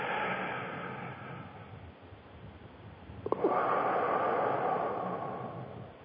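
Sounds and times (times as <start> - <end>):
deep breath drawn into the diaphragm: 0.0 - 1.8, 3.3 - 6.0.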